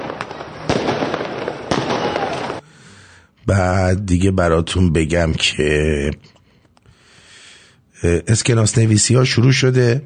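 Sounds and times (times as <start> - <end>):
fireworks banging and crackling outdoors: 0.0 - 2.6
speech: 3.5 - 6.4, 8.0 - 10.0.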